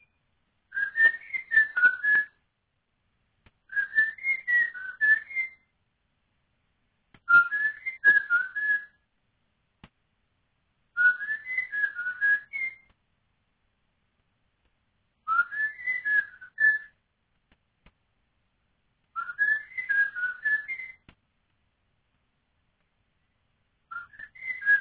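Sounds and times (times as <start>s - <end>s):
unidentified bird whistling fluty phrases: 0.0s - 2.3s, 3.7s - 5.6s, 7.3s - 9.0s, 11.0s - 12.9s, 15.3s - 16.9s, 19.2s - 21.0s, 23.9s - 24.7s.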